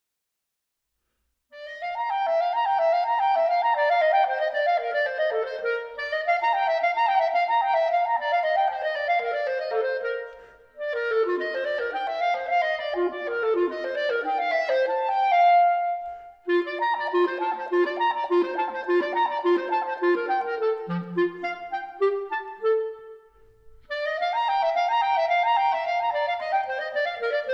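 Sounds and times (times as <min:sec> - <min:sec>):
solo clarinet study: 0:01.5 - 0:27.5.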